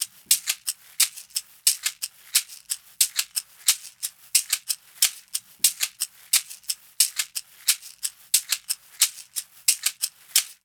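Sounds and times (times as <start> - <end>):
percussion shaker loop: 0.0 - 10.6.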